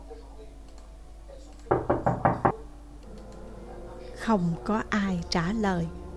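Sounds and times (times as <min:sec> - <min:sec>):
knocking on a closed inner room door: 0:01.7 - 0:02.6
speech: 0:04.3 - 0:06.0.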